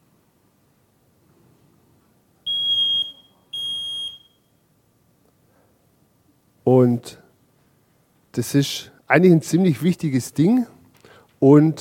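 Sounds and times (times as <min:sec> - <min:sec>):
smoke alarm shrill beeps: 0:02.5 - 0:04.6
speech: 0:06.8 - 0:07.2, 0:08.4 - 0:10.8, 0:11.4 - 0:11.7.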